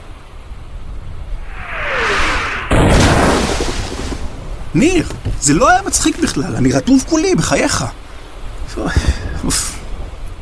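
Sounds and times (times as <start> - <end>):
sustained roaring wash: 0.0 - 10.4
rising whoosh: 1.3 - 4.4
naval cannon fire blast: 1.5 - 4.4
speech: 4.7 - 8.0, 8.7 - 9.8.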